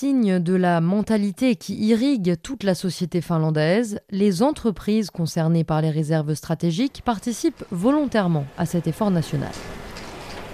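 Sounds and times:
speech: 0:00.0 - 0:09.8
sewing machine running at the central library in Helsinki Finland: 0:07.1 - 0:10.5.

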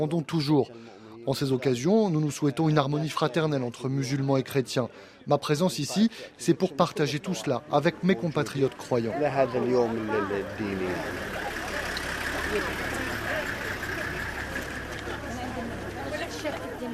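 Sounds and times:
speech: 0:00.0 - 0:11.5, 0:12.5 - 0:12.9
crowd of worshippers chattering: 0:00.0 - 0:16.9
bus and car engines idling: 0:07.8 - 0:16.9.

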